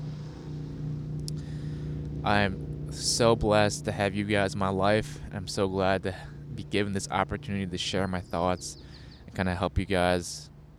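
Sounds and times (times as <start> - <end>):
motorcycle engine droning: 0.0 - 10.7
speech: 2.2 - 10.5.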